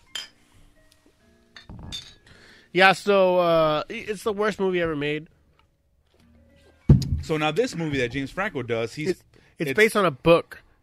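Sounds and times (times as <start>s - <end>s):
drinking glasses clinking together in a toast: 0.1s - 0.4s, 1.5s - 2.2s
speech: 2.7s - 5.4s, 7.3s - 10.6s.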